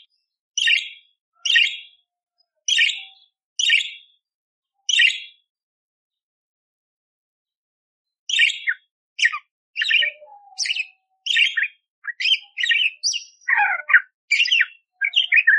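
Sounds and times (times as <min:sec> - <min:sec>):
budgerigar chirping: 0:00.6 - 0:02.0, 0:02.7 - 0:04.0, 0:04.9 - 0:05.3, 0:08.3 - 0:15.5.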